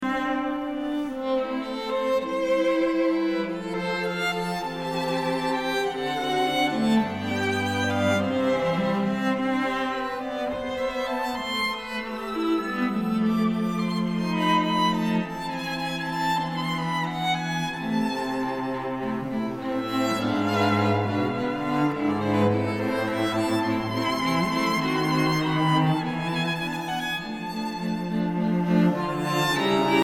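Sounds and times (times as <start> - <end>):
string quartet playing: 0.0 - 30.0.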